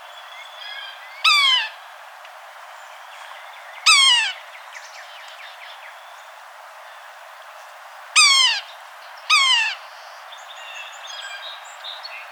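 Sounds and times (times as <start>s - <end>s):
yellow-bellied sapsucker squealing downslurred mewing calls: 0.6s - 1.8s, 3.8s - 4.5s, 8.2s - 10.0s.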